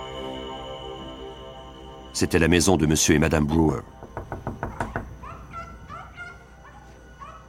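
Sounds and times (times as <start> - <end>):
speech: 2.2 - 4.0
sharp knocks on a door: 3.9 - 5.2
animal making high rising yelps and chirping calls: 4.6 - 7.4.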